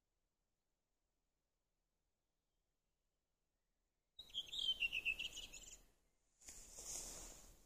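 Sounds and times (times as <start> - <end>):
redwing song: 4.2 - 5.9.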